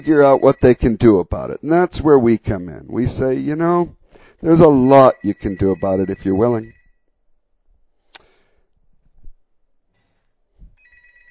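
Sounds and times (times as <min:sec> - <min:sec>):
telephone ringing on a call-in line: 0:00.0 - 0:01.2, 0:04.5 - 0:07.0, 0:10.8 - 0:11.2
speech: 0:00.0 - 0:06.8.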